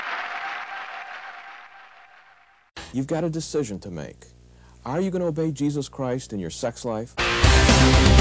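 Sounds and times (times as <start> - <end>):
crowd applauding: 0.0 - 2.6
speech: 2.9 - 8.1.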